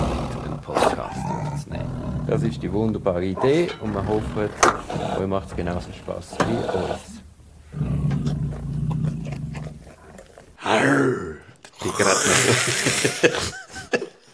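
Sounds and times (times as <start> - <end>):
deep rumbling growl: 0.0 - 12.3
loud rasping throaty roars: 0.0 - 13.5
speech: 2.3 - 7.9, 10.7 - 13.6
laughter: 11.8 - 14.3.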